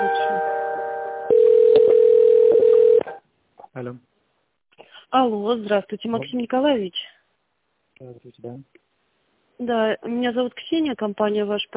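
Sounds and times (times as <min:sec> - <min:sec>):
telephone line tone during a call transfer: 0:01.3 - 0:03.2
speech: 0:03.8 - 0:04.1, 0:05.1 - 0:07.2, 0:08.0 - 0:08.8, 0:09.6 - 0:11.7.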